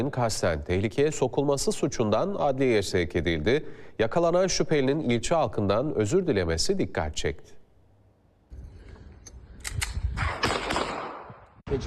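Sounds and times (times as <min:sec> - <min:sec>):
speech: 0:00.0 - 0:07.6
gunshots fired into the air on a street: 0:10.2 - 0:11.6.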